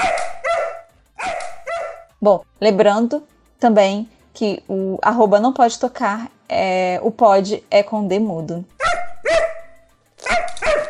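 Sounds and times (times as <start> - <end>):
dog barking: 0.0 - 2.1, 8.8 - 10.8
speech: 2.2 - 8.8.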